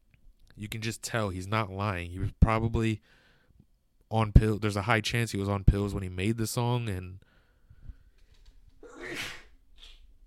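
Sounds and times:
speech: 0.6 - 3.2, 4.1 - 7.3
person sneezing: 8.8 - 10.0.

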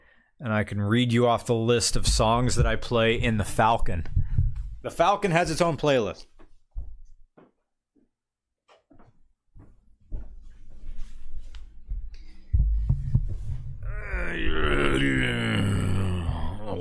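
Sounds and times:
speech: 0.4 - 4.2, 4.8 - 6.3
soft knocks and shuffles: 1.9 - 8.1, 8.7 - 13.9
man grunting and groaning while sitting down: 13.8 - 16.8.

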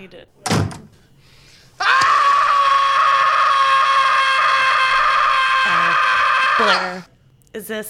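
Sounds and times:
speech: 0.0 - 0.8, 6.6 - 7.8
man screaming in a movie clip: 1.8 - 7.1.

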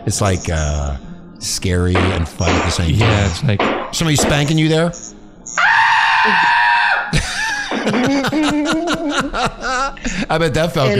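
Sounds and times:
speech: 0.0 - 5.6, 6.2 - 6.5, 7.1 - 10.9
loud piercing human scream breaking into shrill shrieks: 5.6 - 7.1
laughter: 7.1 - 10.9.

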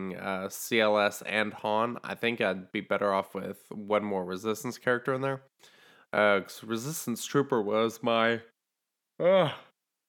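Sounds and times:
speech: 0.0 - 8.5, 9.2 - 9.7
person yawning: 9.2 - 9.8.

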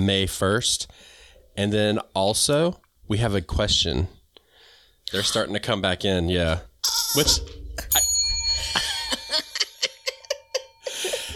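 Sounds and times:
speech: 0.0 - 4.2, 5.1 - 8.0
bell dinging: 7.8 - 11.3.

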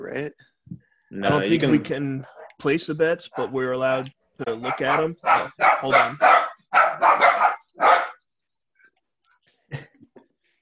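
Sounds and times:
speech: 0.0 - 0.5, 1.2 - 6.4
dogs barking loudly: 2.2 - 2.6, 3.2 - 3.7, 4.5 - 8.4.

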